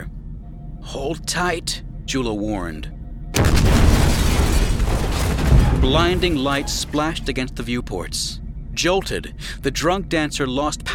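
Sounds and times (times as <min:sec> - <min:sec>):
speech: 0:00.9 - 0:03.5, 0:05.8 - 0:10.9
space cruiser turbolaser fire exploding against a ship: 0:03.4 - 0:06.8.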